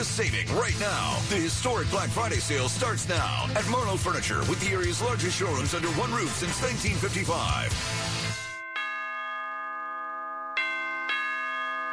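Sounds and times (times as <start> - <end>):
speech: 0.1 - 8.2
doorbell chiming in a ding-dong pattern: 8.4 - 11.9.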